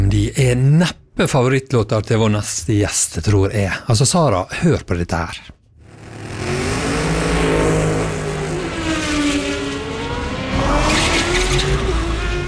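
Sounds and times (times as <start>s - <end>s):
speech: 0.3s - 5.6s
race car engine roaring on a racetrack: 5.8s - 12.4s
race car tire noise: 5.8s - 12.4s.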